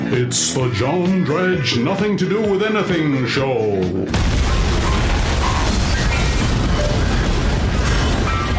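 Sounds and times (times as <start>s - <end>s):
speech: 0.1s - 4.5s
comic explosion effect on a theme tune: 4.1s - 8.5s.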